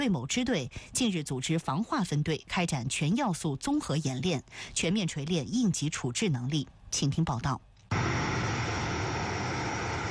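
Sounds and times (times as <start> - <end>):
speech: 0.0 - 7.7
fixed-wing anti-submarine patrol aircraft engine roar in flight: 7.9 - 10.0.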